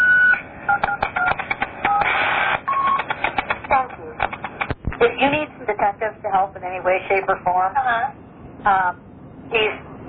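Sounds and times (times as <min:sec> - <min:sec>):
telephone keypad tones while entering a number: 0:00.0 - 0:02.1, 0:02.7 - 0:03.5
speech: 0:05.2 - 0:09.8.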